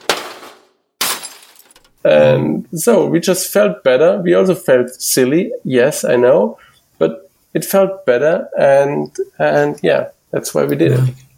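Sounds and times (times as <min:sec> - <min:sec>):
hammer blows smashing into hardware: 0:00.0 - 0:02.0
speech: 0:02.0 - 0:11.3.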